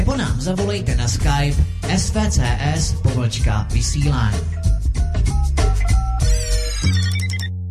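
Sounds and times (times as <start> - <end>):
speech: 0.1 - 4.6
telephone ringing in a radio studio: 5.8 - 7.5.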